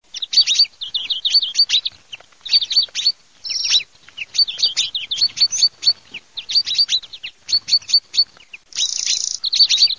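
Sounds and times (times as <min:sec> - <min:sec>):
European greenfinch singing: 0:00.0 - 0:09.9.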